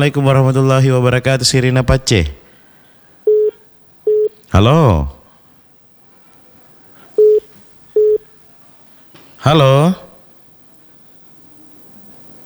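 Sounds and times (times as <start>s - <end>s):
speech: 0.0s - 2.4s, 4.5s - 5.2s, 9.4s - 10.0s
telephone busy tone beeps over a quiet line: 3.3s - 4.4s, 7.2s - 8.2s.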